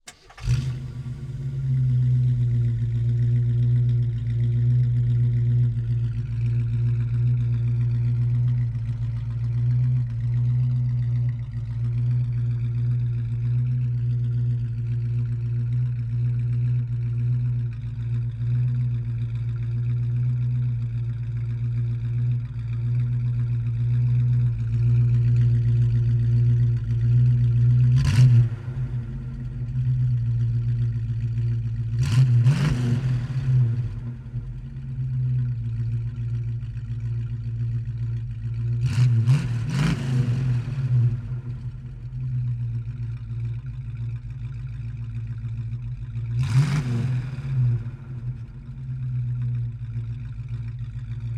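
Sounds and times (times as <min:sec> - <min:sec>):
1968 AMC Javelin engine starting, idling, blipping and switching off, exterior: 0:00.0 - 0:51.3.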